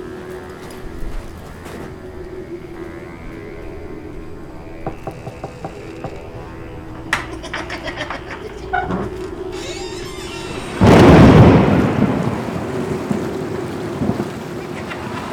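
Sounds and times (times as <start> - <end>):
steady rain: 0.0 - 5.2, 6.1 - 15.3
laughter: 6.2 - 11.8, 14.5 - 15.3
loud rumbling thunderclap: 10.4 - 15.3.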